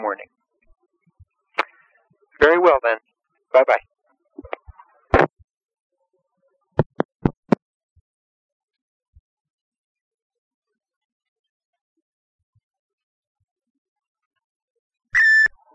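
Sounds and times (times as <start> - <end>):
speech: 0.1 - 0.4, 2.4 - 4.6
voicemail beep: 15.2 - 15.6.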